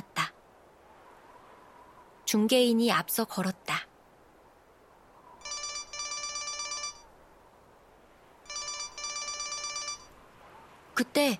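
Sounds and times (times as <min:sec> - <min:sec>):
speech: 0:02.3 - 0:03.9, 0:11.0 - 0:11.3
mobile phone ringtone: 0:05.4 - 0:07.0, 0:08.5 - 0:10.1.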